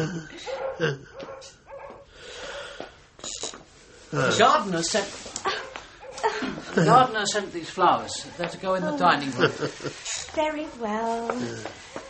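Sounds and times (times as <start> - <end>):
laughter: 0.0 - 1.2, 6.2 - 7.3, 9.0 - 10.0
speech: 0.0 - 1.6, 4.1 - 5.3, 6.3 - 11.9
dogs barking and yipping: 0.4 - 2.1, 11.8 - 12.0.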